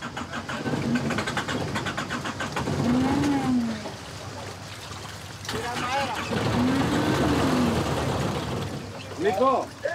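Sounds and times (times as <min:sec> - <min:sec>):
boat engine cranking but failing to start: 0:00.0 - 0:03.4, 0:05.5 - 0:09.1.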